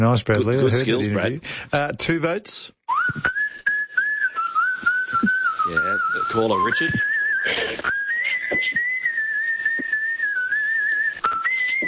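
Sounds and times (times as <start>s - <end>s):
speech: 0.0s - 3.7s, 5.2s - 7.9s
person whistling a long sustained tune: 2.9s - 11.8s.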